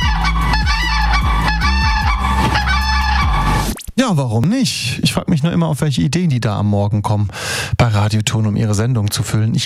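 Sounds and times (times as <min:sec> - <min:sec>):
pair of common cranes calling: 0:00.0 - 0:03.7
speech: 0:04.1 - 0:09.6.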